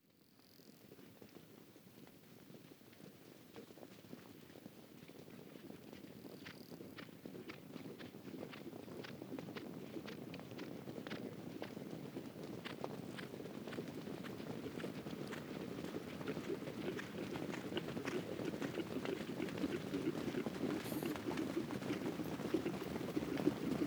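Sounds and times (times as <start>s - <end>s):
herd of horses passing: 7.1s - 23.8s.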